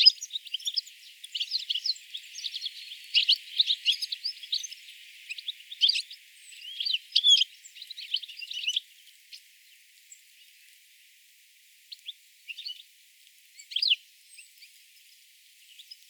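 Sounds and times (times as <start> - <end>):
European goldfinch Carduelis carduelis twittering calls: 0.0 - 9.4, 11.9 - 12.8, 13.6 - 14.7.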